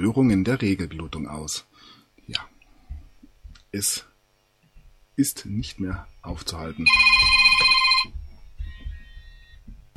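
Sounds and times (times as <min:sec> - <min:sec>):
speech: 0:00.0 - 0:02.5, 0:03.7 - 0:04.1, 0:05.2 - 0:07.7
telephone ringing on an incoming call: 0:06.8 - 0:09.6.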